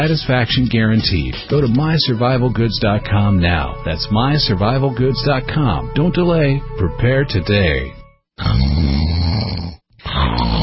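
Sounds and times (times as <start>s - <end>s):
speech: 0.0s - 9.2s
loud snoring: 8.4s - 10.6s.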